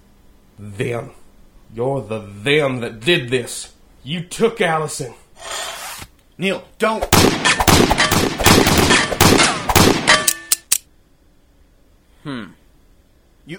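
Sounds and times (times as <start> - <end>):
speech: 0.6 - 5.7, 6.4 - 7.2
loud dense gunfire: 7.1 - 10.4
bullets clanging off a metal shovel: 7.4 - 10.8.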